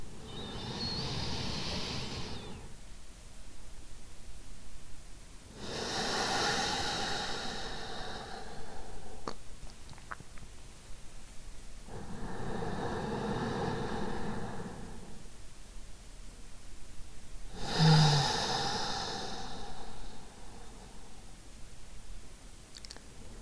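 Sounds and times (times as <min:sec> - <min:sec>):
slow deep breathing into the belly during a conscious breathing exercise: 0:00.0 - 0:02.8, 0:05.5 - 0:09.4, 0:11.9 - 0:15.4, 0:17.5 - 0:21.6
faint clicks: 0:22.7 - 0:23.1.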